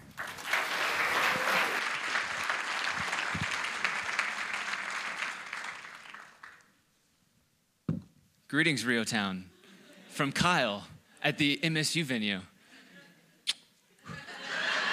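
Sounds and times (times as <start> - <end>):
audience applause: 0.0 - 6.7
speech: 8.6 - 9.5, 10.2 - 12.5
laughter: 14.0 - 14.9.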